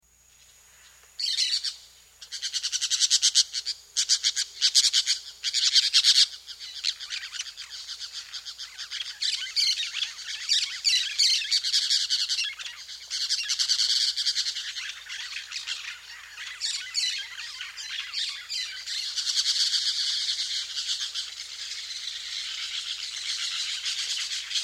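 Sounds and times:
Orange-chinned parakeet calling in South America: 1.2s - 24.6s.

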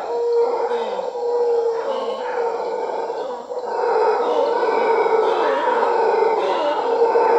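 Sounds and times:
mantled howler monkeys howling: 0.0s - 7.3s.

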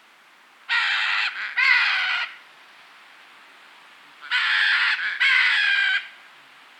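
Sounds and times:
red-and-green macaw giving harsh raucous squawks: 0.7s - 2.4s, 4.2s - 6.1s.

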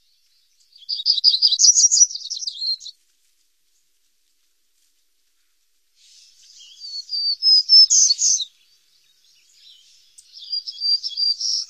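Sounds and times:
Hermit warbler singing: 0.0s - 3.0s, 6.0s - 11.6s.

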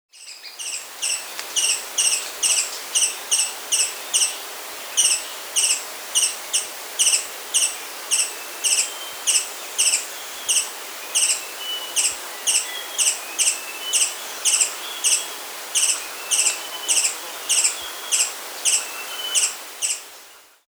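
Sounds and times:
Booted Racquettail Ocreatus underwoodii in South America: 0.1s - 20.4s.

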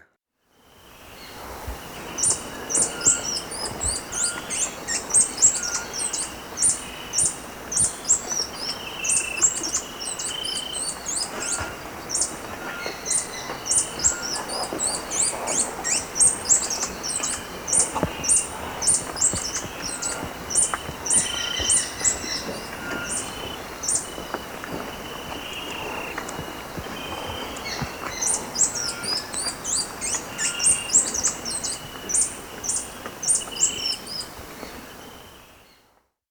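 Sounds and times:
White-tipped Sicklebill in South America: 0.8s - 35.8s.

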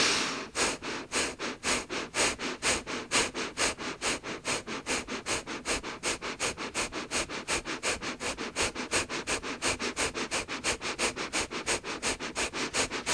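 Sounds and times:
rapid rhythmic nasal breathing in a breathing exercise: 0.0s - 13.1s.

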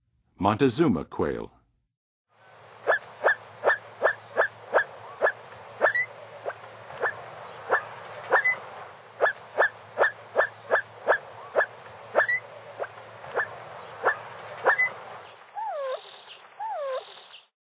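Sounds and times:
Montezuma Quail in the western USA: 2.8s - 8.6s, 9.2s - 17.3s.

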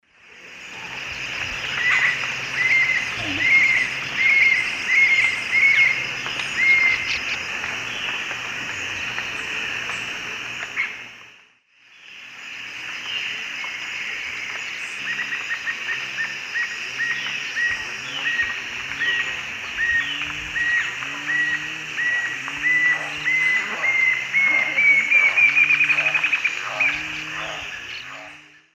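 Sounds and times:
Galbula tombacea calls and song in the Eastern Lowlands of South America: 0.4s - 11.1s, 11.9s - 28.7s.

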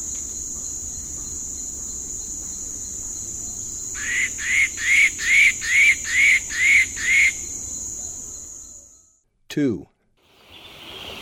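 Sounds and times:
high insect hum: 0.0s - 9.1s
white-throated woodpecker calling in eastern lowlands of South America: 1.0s - 7.6s.

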